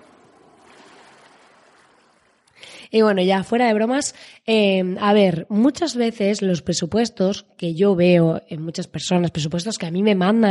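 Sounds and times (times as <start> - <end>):
ocean waves: 0.0 - 2.9
speech: 2.9 - 10.5.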